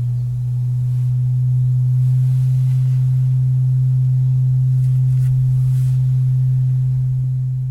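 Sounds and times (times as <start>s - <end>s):
ritual cauldron humming with a deep resonant tone: 0.0s - 7.6s.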